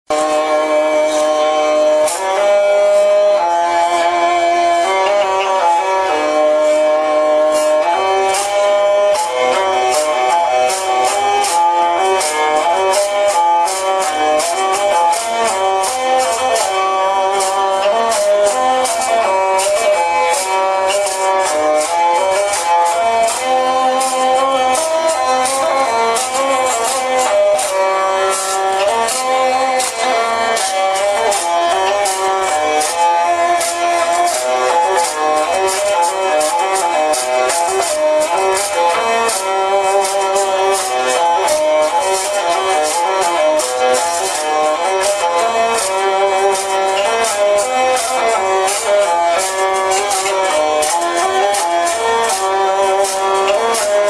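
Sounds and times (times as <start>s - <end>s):
medieval chifonie hurdy-gurdy playing: 0.1s - 54.0s.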